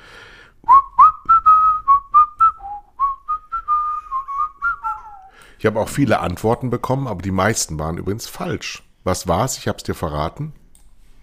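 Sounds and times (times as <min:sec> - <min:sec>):
person whistling an advertising jingle: 0:00.7 - 0:05.4
speech: 0:05.6 - 0:10.6.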